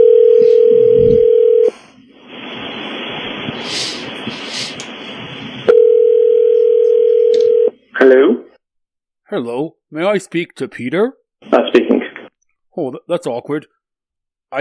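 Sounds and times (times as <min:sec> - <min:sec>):
telephone dial tone: 0:00.0 - 0:01.7, 0:05.7 - 0:07.7
rushing noisy phone line with faint high blips: 0:00.0 - 0:03.6, 0:05.1 - 0:08.2
speech: 0:09.4 - 0:12.0, 0:12.8 - 0:13.8.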